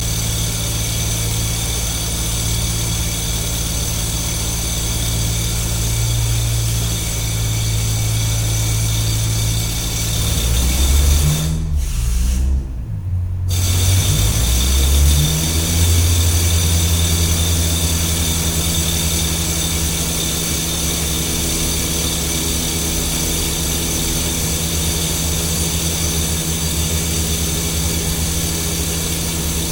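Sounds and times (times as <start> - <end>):
construction site noise: 0.0 - 29.7.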